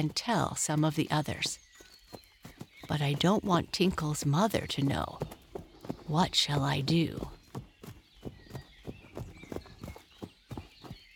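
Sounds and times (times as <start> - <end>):
speech: 0.0 - 2.2, 2.9 - 5.4, 6.1 - 7.4
horse trotting, hooves clip-clopping: 0.0 - 11.1.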